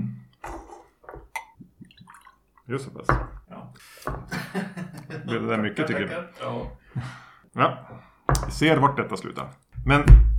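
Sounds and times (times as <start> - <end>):
liquid poured from a bottle into a glass: 1.4 - 2.4
speech: 2.7 - 3.4, 5.3 - 7.8, 8.5 - 10.3
laughter: 4.2 - 6.6.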